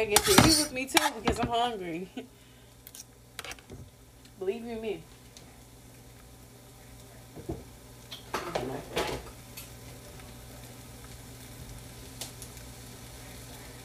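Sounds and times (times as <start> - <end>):
utensil scraping and clinking against the pot: 0.0 - 1.3
speech: 0.0 - 2.4, 4.4 - 5.1, 8.4 - 9.3
butter and eggs sizzling in a pot: 0.0 - 13.8.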